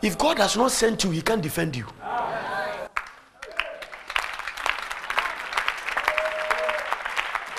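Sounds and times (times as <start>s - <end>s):
speech: 0.0s - 2.5s
audience applauding: 2.9s - 7.5s.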